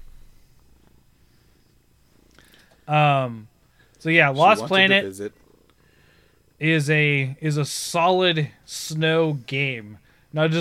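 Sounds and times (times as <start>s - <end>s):
speech: 2.9s - 5.4s, 6.6s - 10.5s
cat purring: 4.4s - 5.8s.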